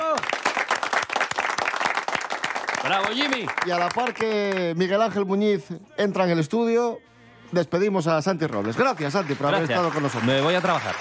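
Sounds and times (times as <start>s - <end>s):
small crowd applauding: 0.0s - 5.2s, 8.2s - 11.0s
speech: 2.8s - 11.0s.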